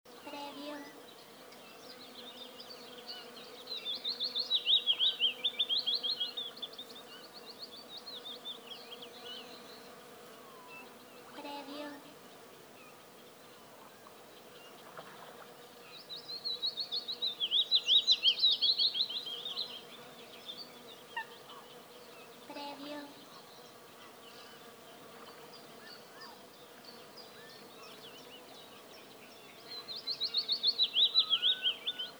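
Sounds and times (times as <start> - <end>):
birds at a forest lake: 0.2 - 32.1.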